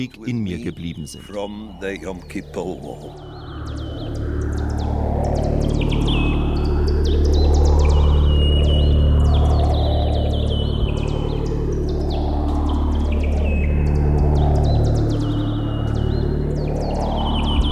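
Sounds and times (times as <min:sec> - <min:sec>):
speech: 0:00.0 - 0:03.8
synthesized birdsong: 0:00.0 - 0:17.6
synthesized helicopter sounds made with biofeedback: 0:00.0 - 0:17.6.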